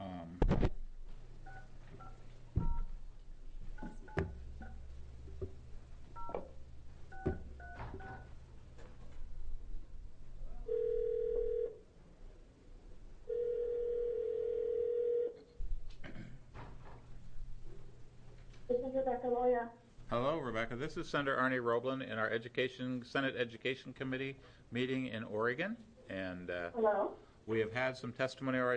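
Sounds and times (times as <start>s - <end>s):
low hum: 0.0s - 28.7s
steady electronic phone tone: 10.7s - 11.8s, 13.3s - 15.4s
speech: 20.4s - 28.7s.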